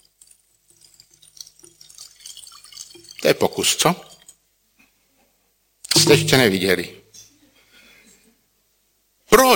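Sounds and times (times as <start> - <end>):
water running through an empty pipe: 0.0 - 4.4
drip-like plinks: 0.2 - 3.4, 5.9 - 6.6
speech: 3.2 - 4.2, 6.1 - 7.0.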